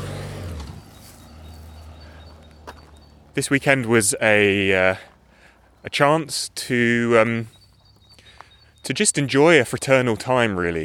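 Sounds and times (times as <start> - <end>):
car driving past: 0.0 - 3.4
steady road hum: 0.0 - 10.8
speech: 3.4 - 5.1, 5.8 - 7.6, 8.8 - 10.8.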